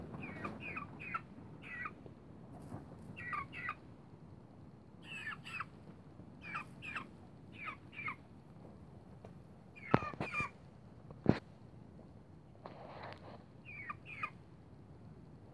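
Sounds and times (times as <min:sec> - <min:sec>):
lost chick peeping: 0:00.1 - 0:02.0, 0:03.0 - 0:03.8, 0:05.0 - 0:08.3, 0:09.7 - 0:10.6, 0:12.9 - 0:14.4.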